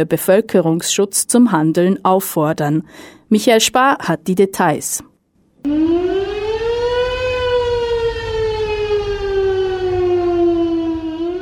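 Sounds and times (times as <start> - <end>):
speech: 0.0 - 6.2
civil defense siren wailing during the annual alarm test in Switzerland: 5.6 - 11.4.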